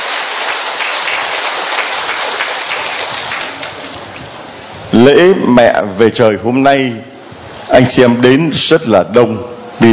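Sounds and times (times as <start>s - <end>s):
large crowd applauding loudly: 0.0s - 4.2s
speech: 4.9s - 7.1s, 7.7s - 9.9s.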